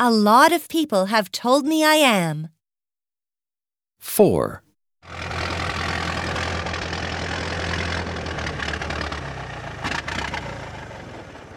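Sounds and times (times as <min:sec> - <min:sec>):
speech: 0:00.0 - 0:02.6, 0:04.0 - 0:05.5
car engine idling: 0:05.1 - 0:11.5.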